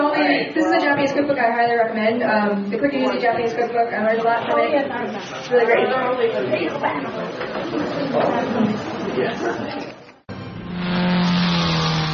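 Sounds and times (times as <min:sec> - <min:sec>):
crowd chatter: 0:00.0 - 0:10.3
speech: 0:00.4 - 0:09.9
motor noise: 0:10.3 - 0:12.1
race car engine revving: 0:10.3 - 0:12.1.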